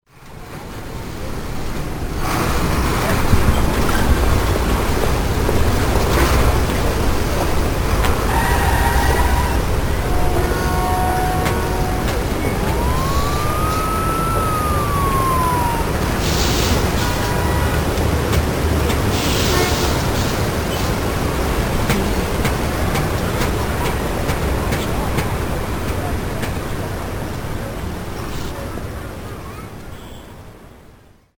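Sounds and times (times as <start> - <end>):
city ambience: 0.1 - 31.3.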